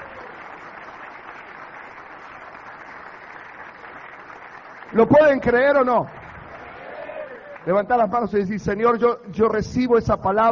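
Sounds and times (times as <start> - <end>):
large crowd applauding: 0.0 - 8.3
speech: 4.9 - 6.2, 7.6 - 10.5.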